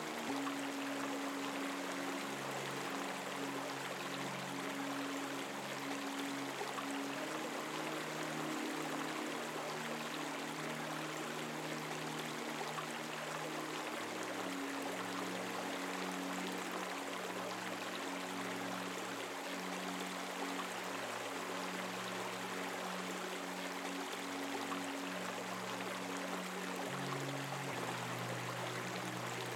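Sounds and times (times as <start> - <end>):
babbling brook: 0.0 - 29.5
soft low melody with long sustained notes: 0.0 - 29.5.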